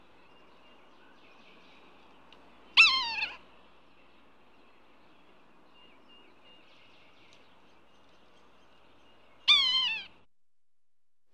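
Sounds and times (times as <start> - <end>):
yellow-bellied sapsucker mewing calls: 2.8 - 3.4, 9.5 - 10.2.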